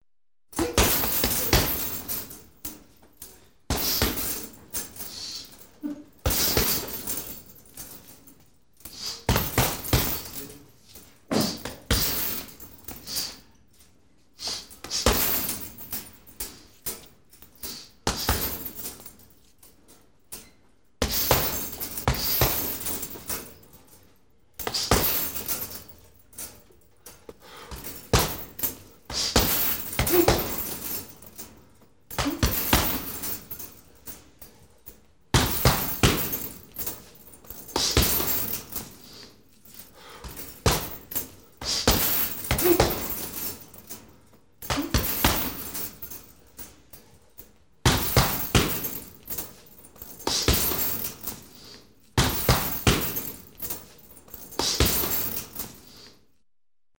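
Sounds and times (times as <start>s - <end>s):
boxing punches on a heavy punching bag: 0.6s - 2.4s, 3.7s - 4.4s, 6.2s - 7.2s, 9.2s - 10.4s, 11.3s - 12.5s, 14.9s - 15.6s, 18.1s - 18.8s, 21.0s - 23.0s, 24.6s - 25.5s, 27.7s - 31.1s, 32.1s - 33.5s, 35.3s - 36.7s, 37.5s - 39.0s, 40.2s - 43.6s, 44.6s - 46.0s, 47.8s - 49.2s, 50.1s - 51.5s, 52.2s - 53.5s, 54.4s - 55.6s.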